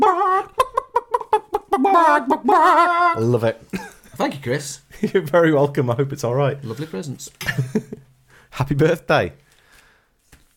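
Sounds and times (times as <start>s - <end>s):
chickens clucking: 0.0s - 3.2s
speech: 2.0s - 9.4s.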